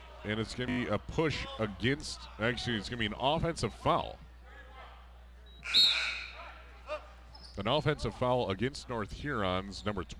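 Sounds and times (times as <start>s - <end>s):
speech: 0.2s - 4.3s, 5.6s - 6.0s, 7.6s - 10.1s
referee's whistle blast at a basketball game: 5.6s - 6.4s.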